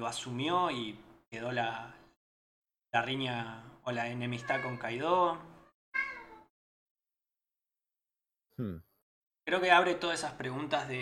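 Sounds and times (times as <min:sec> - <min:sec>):
speech: 0:00.0 - 0:02.0, 0:02.9 - 0:05.5, 0:08.6 - 0:08.9, 0:09.5 - 0:11.0
cat meowing: 0:04.4 - 0:05.0, 0:05.6 - 0:06.5.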